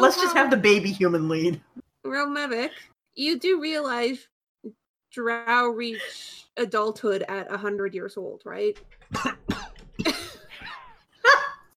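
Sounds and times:
speech: 0.1s - 10.2s
person coughing harshly: 9.1s - 10.5s.

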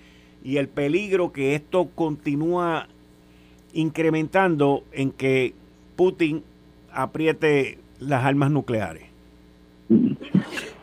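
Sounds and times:
speech: 0.4s - 3.0s, 3.7s - 9.1s
person sneezing: 9.9s - 10.8s.

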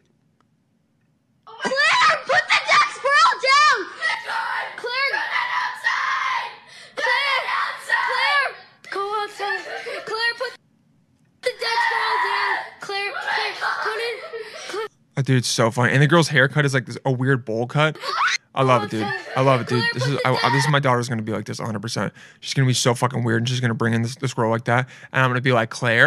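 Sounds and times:
girl screaming: 1.5s - 10.6s, 11.4s - 14.9s, 18.0s - 20.8s
girl giggling with strained vocal sounds: 8.9s - 10.5s, 13.6s - 14.9s, 18.0s - 20.8s
speech: 15.2s - 26.0s.

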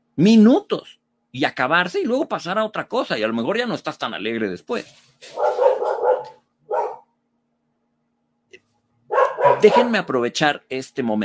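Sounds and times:
speech: 0.2s - 6.4s, 9.6s - 11.2s
dog barking at a window: 5.2s - 7.1s, 9.1s - 10.1s.

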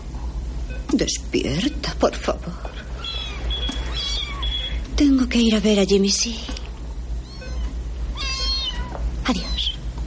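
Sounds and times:
speech: 0.9s - 2.8s, 5.0s - 6.6s
cat meowing plaintively while carried away by a nurse: 2.9s - 4.8s, 7.2s - 9.8s.

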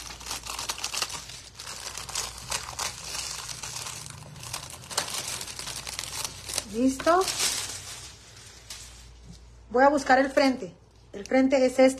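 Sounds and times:
plastic wrap crinkling and crackling as excess is cut away: 0.0s - 9.5s
speech: 6.7s - 7.5s, 9.7s - 11.9s.

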